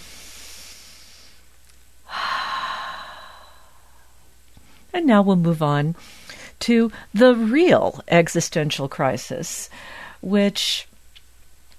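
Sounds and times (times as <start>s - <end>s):
slow deep breath in: 0.0s - 1.5s, 2.1s - 4.2s, 9.7s - 10.2s
speech: 5.0s - 10.9s.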